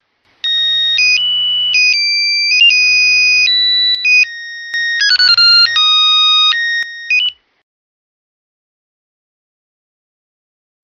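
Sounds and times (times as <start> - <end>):
alarm clock ringing: 0.5 - 7.2.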